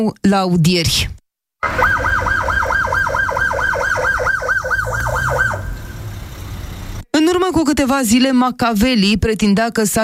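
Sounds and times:
speech: 0:00.0 - 0:02.4, 0:07.3 - 0:10.0
ambulance siren yelping: 0:01.6 - 0:07.0
low rumble of traffic: 0:01.6 - 0:07.1.

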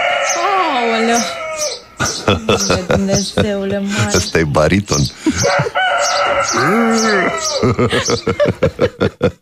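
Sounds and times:
rooster crowing: 0:00.0 - 0:01.9, 0:05.4 - 0:08.5
laughter: 0:02.0 - 0:04.2, 0:05.2 - 0:05.9, 0:06.8 - 0:09.3
speech: 0:02.3 - 0:09.3.

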